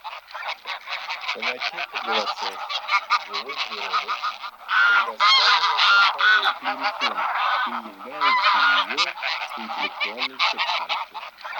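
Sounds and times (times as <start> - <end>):
flock of wild greylag geese cackling: 0.0 - 11.5.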